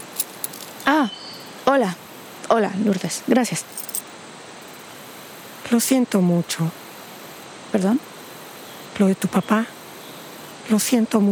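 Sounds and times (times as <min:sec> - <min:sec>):
keys jingling as they are handed over: 0:00.0 - 0:01.5, 0:03.6 - 0:04.8
steady soft hiss: 0:00.0 - 0:11.3
speech: 0:00.9 - 0:01.2, 0:01.8 - 0:03.9, 0:05.7 - 0:06.8, 0:07.7 - 0:08.1, 0:09.0 - 0:09.8, 0:10.7 - 0:11.3.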